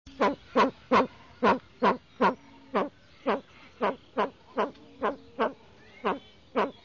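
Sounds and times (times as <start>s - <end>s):
bird with a cold calling in nature: 0.1s - 6.8s.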